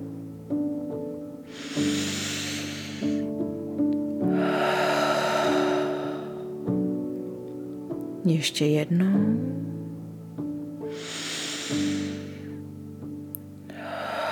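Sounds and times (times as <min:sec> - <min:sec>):
soft steady music: 0:00.0 - 0:14.3
long forceful mouth exhale during a breathing exercise: 0:01.5 - 0:03.2, 0:04.3 - 0:06.5, 0:10.9 - 0:12.5, 0:13.7 - 0:14.3
deep nasal inhale during a breathing exercise: 0:01.5 - 0:03.3, 0:04.3 - 0:06.6, 0:10.9 - 0:12.6, 0:13.7 - 0:14.3
speech: 0:08.3 - 0:09.8.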